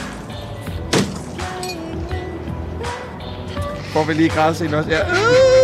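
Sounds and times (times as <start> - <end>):
iron bar smashing into a car: 0.9 - 1.4
speech: 4.0 - 5.5.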